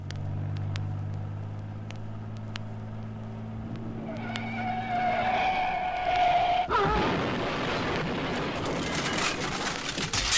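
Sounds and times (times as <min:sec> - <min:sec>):
Thunderbird car engine rumble: 0:00.0 - 0:10.2
Thunderbird car tire squeal: 0:04.0 - 0:07.0.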